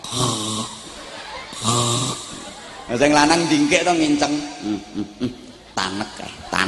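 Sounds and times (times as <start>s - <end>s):
person fake snoring while pretending to be asleep: 0.0s - 0.9s, 1.6s - 2.3s
laughter: 0.0s - 6.6s
speech: 2.9s - 6.6s.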